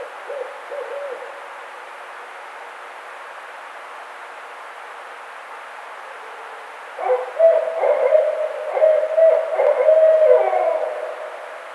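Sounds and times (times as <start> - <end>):
background hiss: 0.0 - 11.7
barred owl hooting: 7.0 - 11.7.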